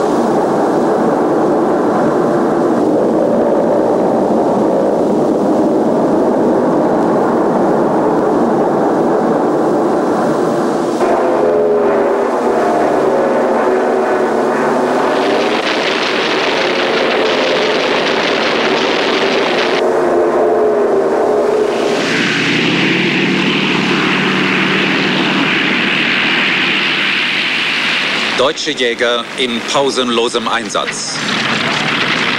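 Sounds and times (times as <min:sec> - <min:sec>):
twin aircraft engines droning: 0:00.0 - 0:32.3
speech: 0:28.6 - 0:31.3.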